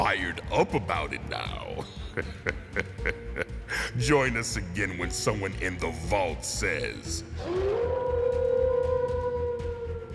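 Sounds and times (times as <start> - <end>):
speech: 0.0 - 3.4, 4.0 - 8.0
laughter: 1.8 - 4.0
wolf howling: 7.4 - 10.1.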